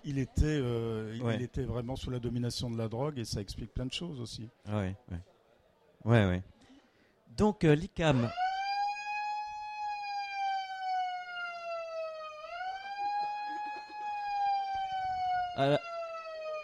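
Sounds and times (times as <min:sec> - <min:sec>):
speech: 0:00.0 - 0:05.3, 0:06.0 - 0:06.6, 0:07.4 - 0:08.4, 0:15.6 - 0:15.9
siren wailing: 0:08.2 - 0:16.6.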